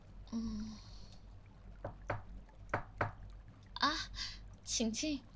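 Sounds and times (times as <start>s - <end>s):
speech: 0.3s - 0.9s, 4.8s - 5.3s
knocking on a door: 1.8s - 3.2s.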